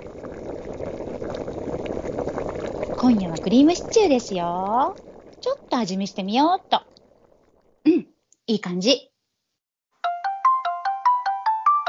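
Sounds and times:
speech: 3.0 - 6.8, 8.5 - 9.1
phone ringtone melody for an incoming call: 10.0 - 11.8.

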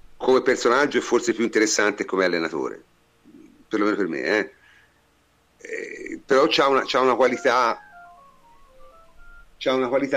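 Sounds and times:
speech: 0.3 - 2.9, 3.7 - 4.6, 5.6 - 7.8, 9.6 - 10.1
telephone ringing with short electronic tones: 6.5 - 10.1.

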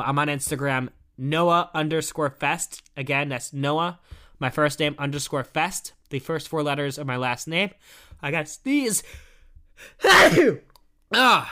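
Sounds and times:
speech: 0.0 - 11.5
quick breathy vocal burst: 9.8 - 10.6
loud sharp sneeze: 10.0 - 10.7.

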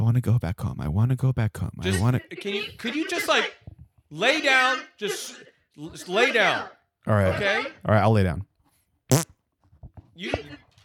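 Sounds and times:
speech: 0.1 - 8.5, 9.1 - 9.3, 10.2 - 10.6
fart: 9.1 - 9.3.

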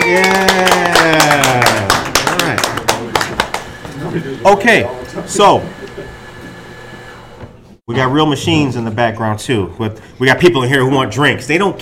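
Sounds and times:
small group of women clapping: 0.0 - 3.8
speech: 0.1 - 0.9, 4.4 - 5.8, 8.0 - 11.7.

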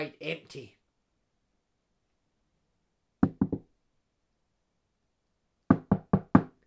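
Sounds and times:
speech: 0.0 - 0.8
quiet knocking on a bedroom door: 3.2 - 3.7, 5.7 - 6.6.

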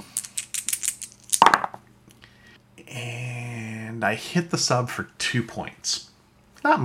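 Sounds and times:
low steady hum: 0.0 - 6.8
dice rattling and clattering: 0.2 - 1.8
speech: 4.0 - 6.8.

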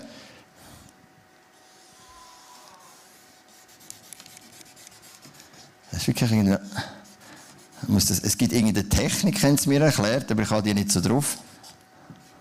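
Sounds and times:
pen scratching and rubbing across a surface while drawing: 2.9 - 5.7
sharp pen ticks: 3.8 - 5.2
speech: 6.0 - 7.0, 7.8 - 11.5.

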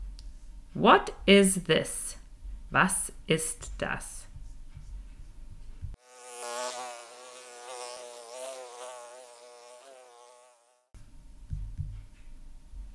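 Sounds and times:
speech: 0.7 - 4.2
bee buzzing: 6.0 - 10.9.

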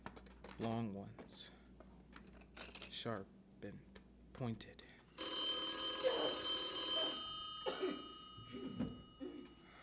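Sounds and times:
speech: 0.6 - 1.6, 3.0 - 4.9, 7.8 - 9.0
old-style telephone bell ringing: 5.2 - 9.7
short coughs or throat-clearing: 7.6 - 9.7.

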